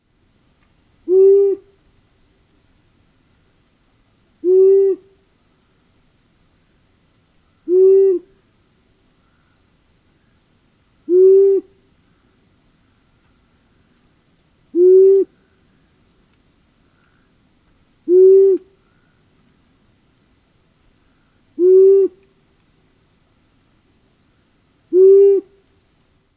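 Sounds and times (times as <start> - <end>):
long-eared owl calling: 1.0 - 1.8, 4.4 - 5.2, 7.6 - 8.4, 11.1 - 11.8, 14.7 - 15.4, 18.0 - 19.2, 21.6 - 22.3, 24.9 - 25.6.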